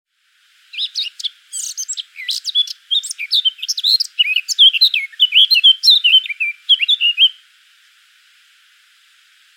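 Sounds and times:
Eurasian blackcap Sylvia atricapilla singing scratchy and fluty notes: 0.7 - 7.4.

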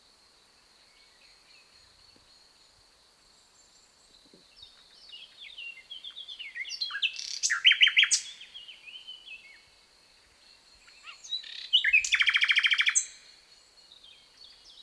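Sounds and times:
common nightingale Luscinia megarhynchos singing: 3.5 - 9.7, 10.7 - 14.8.

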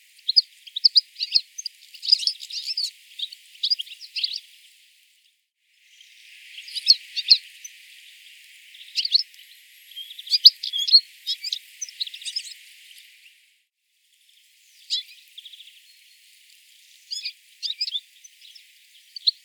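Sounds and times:
European Goldfinch calls: 0.2 - 4.4, 6.5 - 13.3, 14.8 - 15.7, 17.0 - 19.4.

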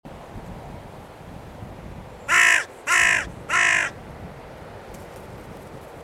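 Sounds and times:
carrion crow Corvus corone cawing: 2.3 - 4.0.

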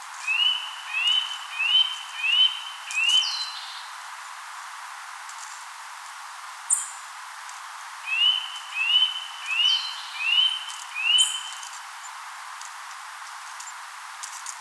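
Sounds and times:
Eurasian nuthatch Sitta europaea whistling calls: 0.3 - 3.6, 8.1 - 11.6.

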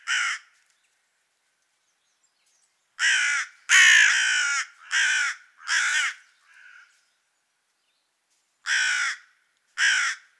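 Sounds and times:
carrion crow Corvus corone giving harsh caws: 0.0 - 0.5, 3.0 - 6.9, 8.7 - 10.3.

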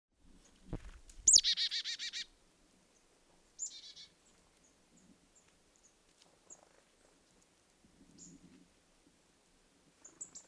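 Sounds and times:
Marsh tit Poecile palustris calling: 1.3 - 2.3, 3.6 - 4.2.

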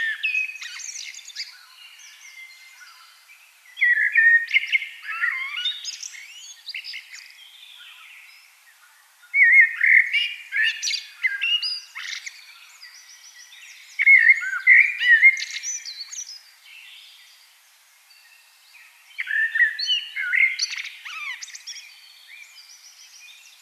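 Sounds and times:
Turdus merula common blackbird singing: 0.0 - 17.5, 18.1 - 23.5.

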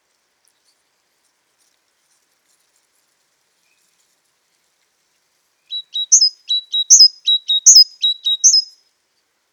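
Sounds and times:
great tit Parus major giving falling whistles and clipped notes: 5.7 - 8.7.

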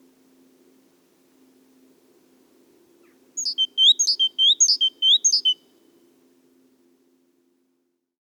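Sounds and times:
great tit Parus major calling with high thin notes: 3.4 - 5.6.

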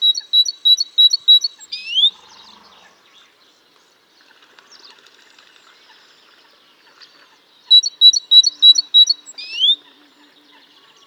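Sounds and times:
great tit Parus major calling: 0.0 - 2.2, 7.7 - 9.8.

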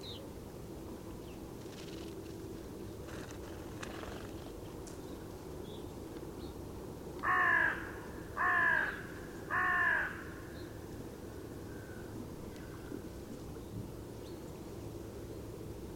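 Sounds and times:
Carrion crow Corvus corone giving loud rasping caws: 7.2 - 10.5.

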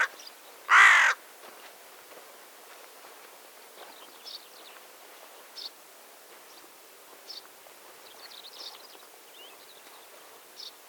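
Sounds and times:
carrion crow cawing, Corvus corone: 0.7 - 1.2
small birds chirping: 3.8 - 4.9, 6.5 - 10.8.

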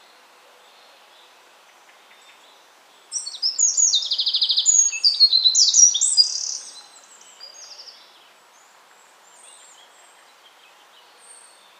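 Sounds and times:
faint background noise: 0.0 - 11.7
Eurasian wren Troglodytes troglodytes song with rattling trill: 3.1 - 7.9.

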